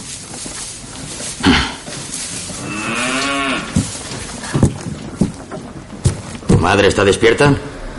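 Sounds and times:
knocks and rustling in a stable: 0.0s - 7.2s
cattle lowing in a stable: 2.4s - 3.9s
speech: 6.7s - 7.7s.

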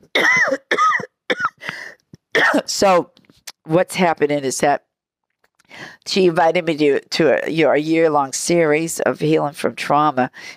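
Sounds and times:
person coughing harshly: 0.1s - 1.8s, 2.4s - 2.7s
speech: 2.8s - 4.9s, 5.7s - 10.5s.

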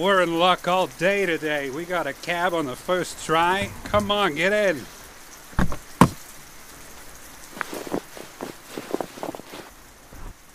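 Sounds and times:
speech: 0.0s - 5.0s
rain falling in a steady soft hiss: 0.0s - 10.5s
sharp knocks: 3.6s - 4.3s.

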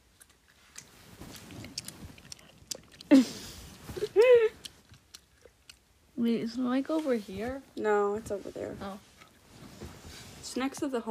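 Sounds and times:
ASMR chewing with wet clicks and crunches: 0.0s - 6.0s
speech: 3.1s - 3.4s, 6.2s - 9.1s, 10.6s - 11.1s.

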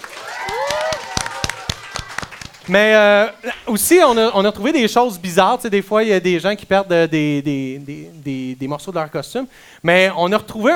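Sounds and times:
small group of people clapping: 0.0s - 4.2s
speech: 2.7s - 10.7s.

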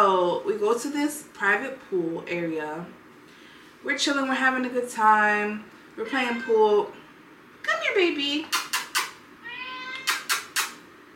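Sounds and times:
speech: 0.3s - 3.0s, 3.8s - 7.0s, 7.6s - 8.6s
cat meowing: 6.1s - 6.8s, 9.4s - 10.6s.

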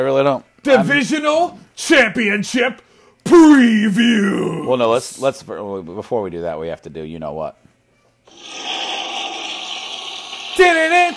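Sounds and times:
speech: 0.0s - 7.7s, 10.6s - 11.1s
toilet flushing: 8.3s - 11.1s.

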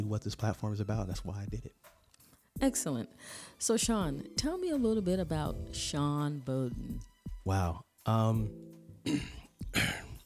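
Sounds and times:
speech: 0.0s - 2.0s, 2.6s - 10.1s
person clearing throat with rough gravelly bursts: 9.1s - 10.2s.

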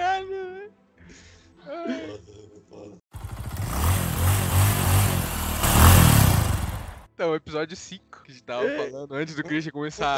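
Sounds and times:
motocross motorcycle revving indoors in a kitchen: 3.2s - 7.1s
speech: 7.3s - 10.1s.

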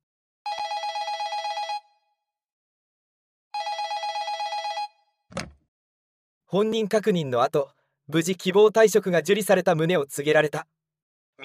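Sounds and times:
telephone ringing with a rapid trilling bell: 0.5s - 2.1s, 3.6s - 5.2s
speech: 6.5s - 10.8s.

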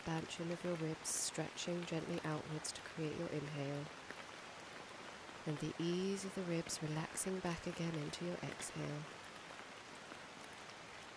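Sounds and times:
speech: 0.0s - 4.2s, 5.5s - 9.2s
soft rainfall with faint droplet taps: 0.0s - 11.1s.

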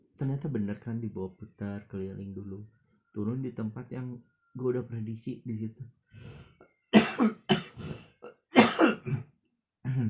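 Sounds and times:
speech: 0.2s - 6.5s, 7.2s - 7.4s
person coughing: 7.0s - 10.0s
throat clearing: 7.0s - 10.0s.

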